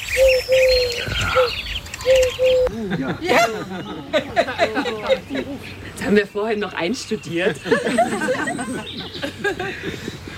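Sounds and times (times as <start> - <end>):
people imitating a dove's cooing with soft hollow hoots: 0.2 - 3.6
laughter: 2.6 - 6.1, 7.2 - 10.3
speech: 2.8 - 10.3.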